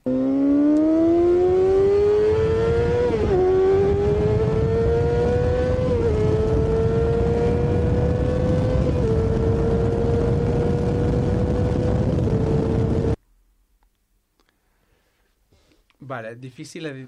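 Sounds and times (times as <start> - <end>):
high-revving supersport motorcycle engine with gear changes: 0.0 - 13.2
speech: 16.2 - 17.0.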